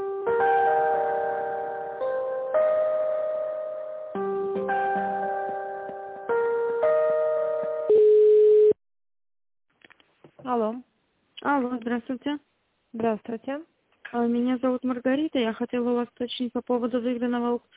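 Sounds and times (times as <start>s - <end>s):
electronic telephone hold melody during a call transfer: 0.5s - 8.8s
speech: 11.8s - 17.7s.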